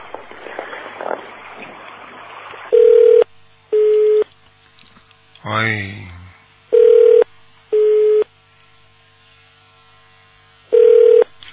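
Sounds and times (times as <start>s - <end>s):
telephone tone of a call not getting through: 2.7s - 4.2s, 6.7s - 8.3s, 10.8s - 11.3s
speech: 5.5s - 6.1s.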